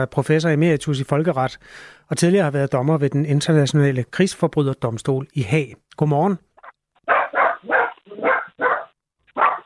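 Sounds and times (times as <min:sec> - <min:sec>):
speech: 0:00.0 - 0:06.5
dog barking: 0:06.6 - 0:09.6.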